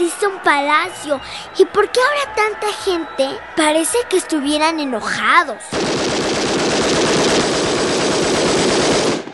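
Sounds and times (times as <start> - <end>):
speech: 0.2 - 7.0
rapid gunfire during a popular protest in front of the Winter Palace: 5.7 - 9.3.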